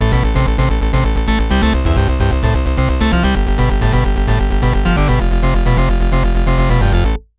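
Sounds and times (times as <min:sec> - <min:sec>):
electro grind music: 0:00.0 - 0:07.2.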